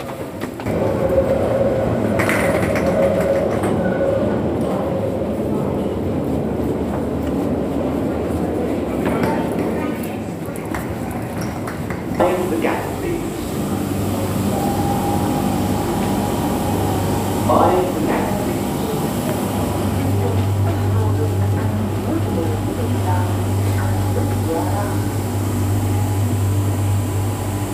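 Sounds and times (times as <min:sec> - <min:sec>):
underground metro train rumbling: 0:00.0 - 0:27.7
underground metro train squeals and clanks: 0:02.2 - 0:04.8, 0:14.4 - 0:16.8
indistinct voices murmuring: 0:07.5 - 0:27.4.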